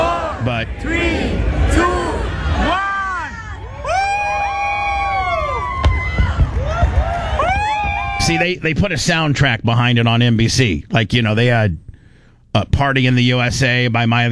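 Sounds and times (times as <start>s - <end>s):
large crowd cheering: 0.0s - 8.7s
speech: 0.4s - 1.9s, 8.3s - 11.8s, 12.5s - 14.3s
sharp bangs of fireworks: 1.4s - 8.8s.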